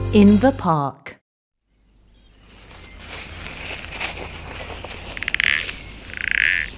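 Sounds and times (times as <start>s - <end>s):
speech: 0.1s - 1.2s
birds: 1.6s - 6.7s
outdoor chorus of insects: 3.0s - 6.7s
frog croaking in rapid pulsed calls: 5.0s - 6.7s.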